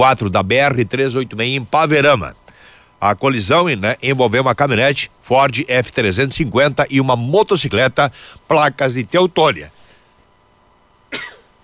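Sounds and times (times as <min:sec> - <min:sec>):
speech: 0:00.0 - 0:02.4, 0:03.0 - 0:09.8, 0:11.1 - 0:11.6
sneeze: 0:11.1 - 0:11.5.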